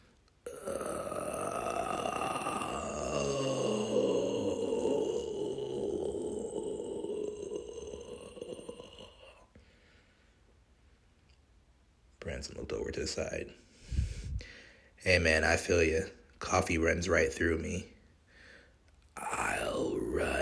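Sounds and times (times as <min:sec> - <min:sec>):
man groaning: 0:00.4 - 0:09.5, 0:19.2 - 0:20.3
speech: 0:12.4 - 0:13.6, 0:15.0 - 0:17.9.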